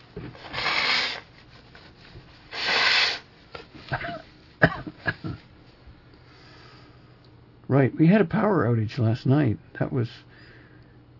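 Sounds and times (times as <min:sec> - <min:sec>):
speech: 0:00.2 - 0:00.6, 0:07.8 - 0:10.3
short sniffs: 0:00.4 - 0:01.3, 0:02.5 - 0:03.3
forceful breathy nose blows: 0:00.4 - 0:01.4, 0:02.4 - 0:03.3.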